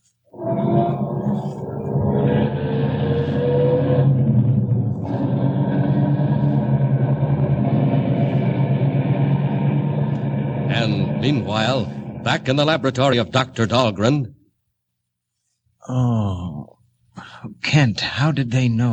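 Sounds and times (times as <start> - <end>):
car engine starting, revving and rumbling as the car drives: 0.4 - 14.1
speech: 11.3 - 14.4, 15.8 - 16.6, 17.4 - 18.9.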